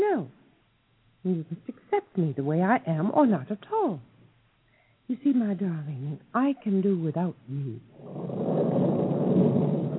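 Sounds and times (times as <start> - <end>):
speech: 1.2 - 4.1, 5.1 - 8.4
thunder rumbling from an approaching storm: 8.0 - 9.9.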